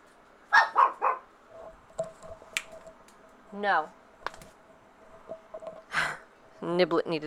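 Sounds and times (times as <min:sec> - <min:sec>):
frustrated dog barking in its pen: 0:00.5 - 0:01.3
speech: 0:03.5 - 0:04.0, 0:06.6 - 0:07.2.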